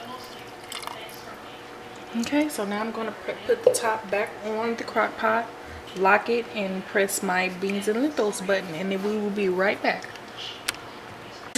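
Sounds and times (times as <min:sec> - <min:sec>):
water pouring from a cup: 0:00.2 - 0:01.2
speech: 0:02.1 - 0:10.6.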